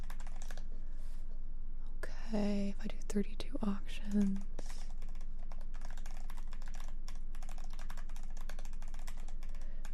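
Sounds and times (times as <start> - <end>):
rapid typing on a computer keyboard: 0.0 - 0.7, 4.1 - 9.9
low constant hum: 0.0 - 9.9
speech: 2.3 - 4.7.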